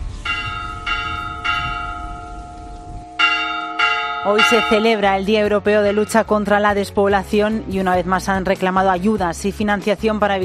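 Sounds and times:
low rumble: 0.0 - 6.8
church bells in rural Spain ringing a peal in protest against rural depopulation: 0.2 - 6.7
speech: 4.2 - 10.4.

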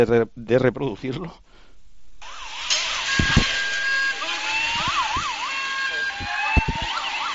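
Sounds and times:
speech: 0.0 - 1.4
police sirens wailing and yelping during a street police intervention: 2.2 - 7.3
sharp knocks and thuds: 3.2 - 3.6, 6.2 - 7.0.

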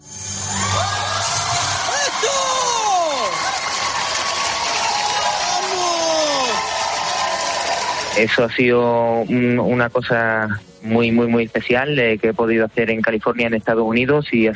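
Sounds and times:
large audience applauding at a juggling performance: 0.7 - 8.6
speech: 8.2 - 14.5.

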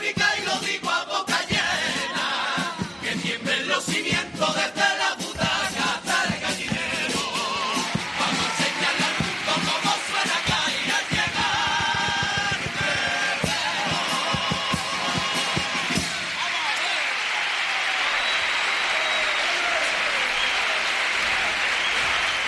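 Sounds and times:
rhythmic clapping beats: 0.0 - 22.4
large theatre audience applauding: 6.7 - 22.4.

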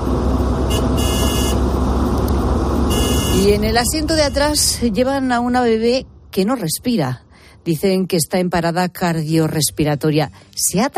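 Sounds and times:
speeding car engine roaring: 0.0 - 6.6
road noise of speeding car: 0.0 - 10.7
car horn blaring: 0.6 - 1.7, 2.8 - 4.6
speech: 3.5 - 10.9.

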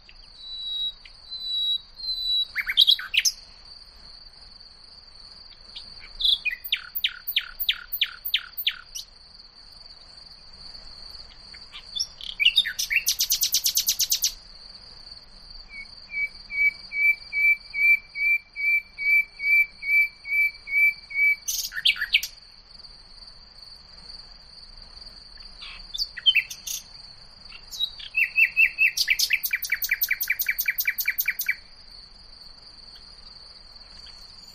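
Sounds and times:
common nightingale singing: 0.0 - 3.7, 5.5 - 9.2, 11.1 - 14.5, 15.6 - 22.6, 25.3 - 31.8, 32.8 - 34.5
high insect drone: 0.0 - 34.5.

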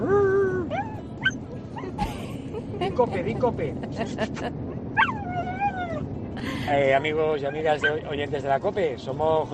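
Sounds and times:
dog whining and yipping on command: 0.0 - 2.1, 4.7 - 6.1, 7.4 - 8.1
speech: 3.0 - 4.6, 6.7 - 9.5.

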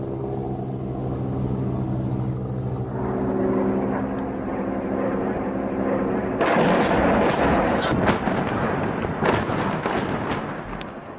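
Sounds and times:
aircraft engine droning during an airstrike: 0.0 - 10.1
bomb explosion from an airstrike on Syria: 6.4 - 11.1
rough roar with sharp cracks and bursts after bombing: 6.4 - 11.1.

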